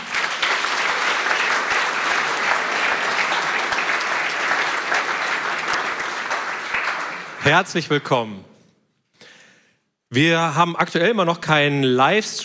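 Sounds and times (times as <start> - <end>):
audience applause: 0.0 - 7.7
speech: 7.5 - 8.5, 10.1 - 12.4.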